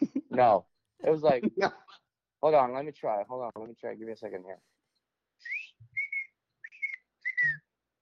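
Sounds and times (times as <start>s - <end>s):
speech: 0.4s - 4.8s
person whistling an imitation of a bird call: 5.4s - 7.7s.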